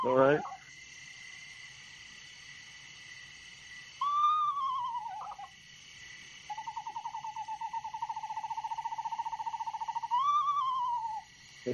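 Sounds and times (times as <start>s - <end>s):
speech: 0.0s - 0.6s
screech owl giving quavering whinny and trill: 0.0s - 0.7s, 3.9s - 5.6s, 6.5s - 11.3s
night insects humming: 0.0s - 11.7s.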